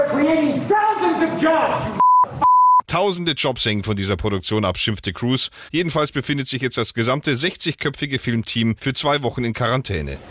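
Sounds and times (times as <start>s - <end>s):
man speaking loudly and agitatedly: 0.0s - 2.0s, 2.9s - 10.2s
speech: 0.0s - 2.0s, 2.9s - 10.2s
flat steady censor bleep tones: 2.0s - 2.9s.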